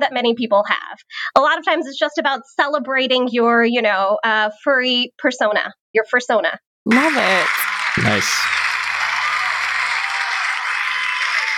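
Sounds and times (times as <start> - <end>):
speech: 0.0 - 8.7
audience applause: 6.9 - 11.5.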